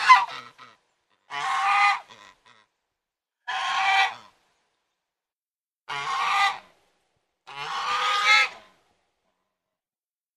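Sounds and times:
domestic goose honking: 0:00.0 - 0:02.8, 0:03.4 - 0:04.4, 0:05.9 - 0:06.7, 0:07.4 - 0:08.7.

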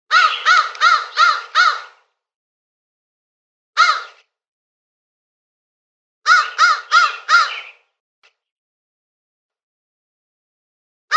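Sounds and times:
crow giving hoarse caws: 0:00.1 - 0:02.1, 0:03.8 - 0:04.2, 0:06.3 - 0:07.8.

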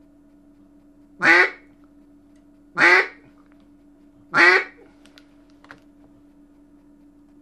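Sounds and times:
low hum: 0:00.0 - 0:07.4
mallard quacking: 0:01.2 - 0:01.7, 0:02.8 - 0:03.2, 0:04.3 - 0:04.8.

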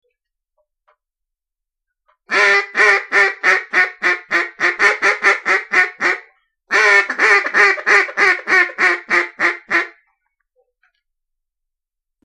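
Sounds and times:
mallard quacking: 0:02.3 - 0:10.0.

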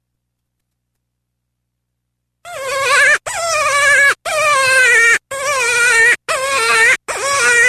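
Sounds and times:
cottontail rabbit bleating cries: 0:02.5 - 0:07.6.

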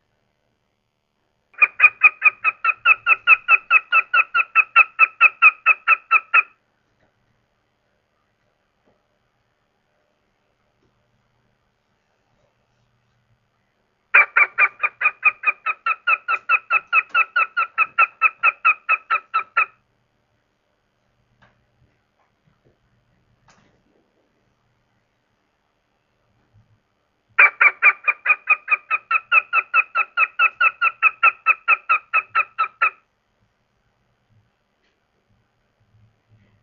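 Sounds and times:
goshawk calling: 0:01.6 - 0:06.6, 0:14.1 - 0:19.8, 0:27.4 - 0:33.0.

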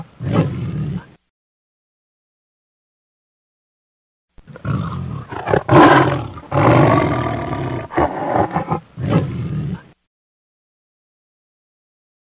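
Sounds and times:
lion roaring grunts: 0:04.5 - 0:10.0.

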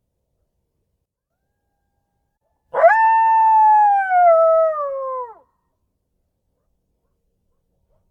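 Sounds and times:
coyote howling: 0:02.8 - 0:05.4.

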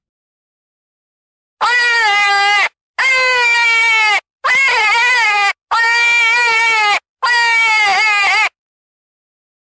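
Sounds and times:
coyote giving long quavering howls: 0:01.6 - 0:08.5.

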